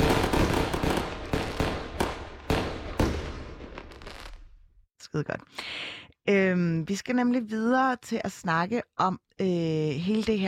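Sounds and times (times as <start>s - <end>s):
fireworks rockets bursting in sharp booms: 0.0s - 4.7s
speech: 5.2s - 10.4s.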